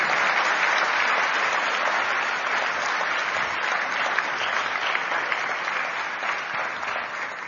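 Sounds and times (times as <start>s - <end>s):
applause from a large audience: 0.0s - 7.4s.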